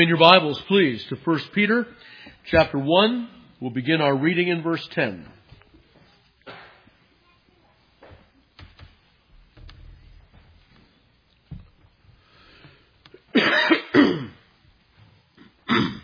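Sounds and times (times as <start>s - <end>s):
speech: 0.0s - 5.4s
person coughing from a tickle in the throat: 13.3s - 14.4s, 15.4s - 16.0s
person clearing throat: 13.3s - 14.5s, 15.4s - 16.0s.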